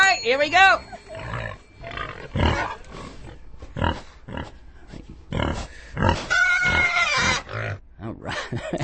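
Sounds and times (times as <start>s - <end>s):
speech: 0.2s - 1.0s
pigs grunting and squealing while being fed: 1.0s - 4.6s, 5.3s - 7.8s.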